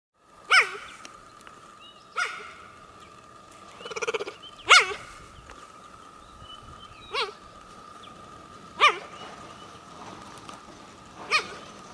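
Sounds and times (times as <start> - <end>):
faint humming tone: 0.3 - 11.9
young cub giving chirping barks: 0.5 - 1.0, 2.2 - 2.7, 3.8 - 5.1, 7.1 - 7.4, 8.8 - 9.2, 11.3 - 11.6.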